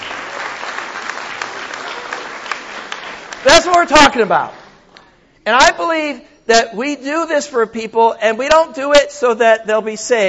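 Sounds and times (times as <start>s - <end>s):
audience applauding: 0.0s - 4.1s
speech: 3.4s - 4.6s, 5.5s - 10.2s.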